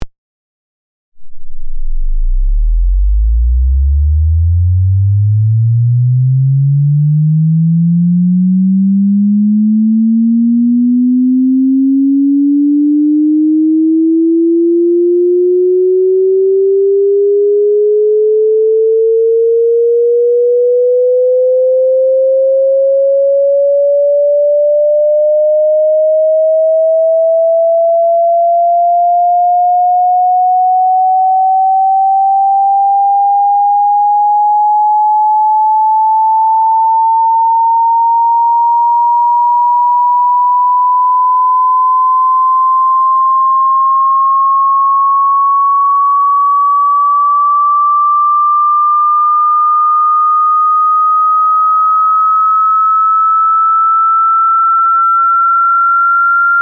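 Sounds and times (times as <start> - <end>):
sine oscillator slowly sweeping from 0 to 5000 Hz: 1.2 - 56.5.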